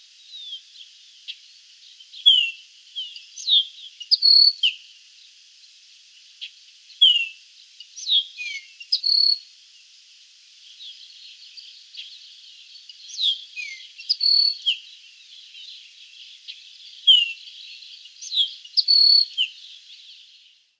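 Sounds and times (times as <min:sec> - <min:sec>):
Baywing Agelaioides badius calls with sharp high chirps and slurred whistles: 0:02.2 - 0:04.8, 0:07.0 - 0:07.4, 0:08.0 - 0:09.4, 0:12.9 - 0:14.9, 0:17.0 - 0:19.6
speech: 0:19.2 - 0:19.8.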